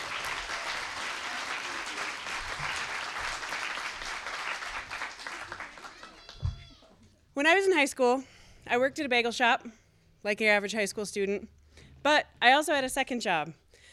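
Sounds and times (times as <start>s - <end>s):
crowd applauding: 0.0s - 6.8s
speech: 7.4s - 13.6s.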